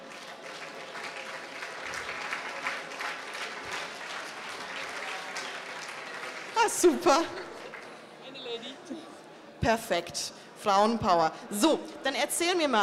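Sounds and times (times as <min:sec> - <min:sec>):
audience applause at a start-up competition award ceremony in Berlin: 0:00.0 - 0:08.0
speech: 0:06.6 - 0:07.4, 0:09.6 - 0:12.8.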